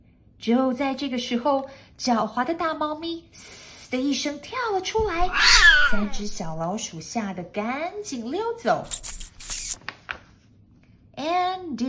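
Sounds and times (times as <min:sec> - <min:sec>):
speech: 0:00.4 - 0:09.1, 0:11.2 - 0:11.8
cat hissing: 0:05.0 - 0:06.6, 0:08.9 - 0:09.8
cat meowing and yowling: 0:05.0 - 0:06.6.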